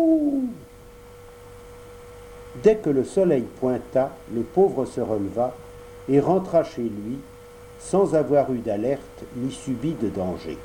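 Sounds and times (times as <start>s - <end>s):
speech: 0.0s - 0.4s, 2.6s - 10.6s
owl hooting at night: 0.0s - 0.7s.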